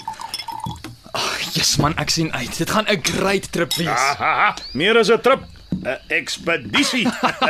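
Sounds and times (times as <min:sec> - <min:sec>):
wine glasses filled with 2014 Merlot clinking in a toast: 0:00.0 - 0:00.8, 0:03.6 - 0:04.1
speech: 0:01.6 - 0:07.4
laughter: 0:06.7 - 0:07.4.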